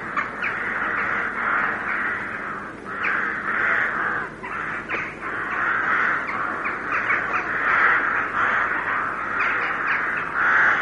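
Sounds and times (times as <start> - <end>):
carrion crow cawing: 0.0 - 10.8.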